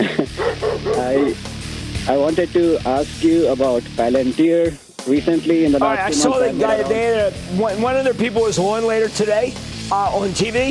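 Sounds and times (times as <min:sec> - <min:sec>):
laughter: 0:00.0 - 0:01.4, 0:05.8 - 0:07.5
dog barking: 0:00.4 - 0:01.4
speech: 0:01.0 - 0:01.5, 0:02.1 - 0:10.7.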